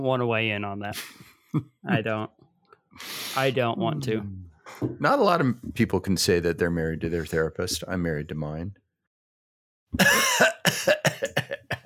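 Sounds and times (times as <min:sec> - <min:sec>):
speech: 0:00.0 - 0:02.4, 0:03.0 - 0:08.8, 0:09.9 - 0:11.4
person coughing: 0:10.0 - 0:11.8.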